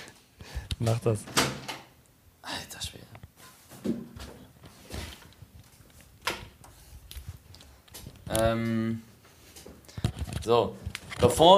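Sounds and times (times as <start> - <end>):
speech: 0.8 - 1.6, 8.4 - 9.1, 10.4 - 11.5
soft scattered footsteps: 3.2 - 11.1.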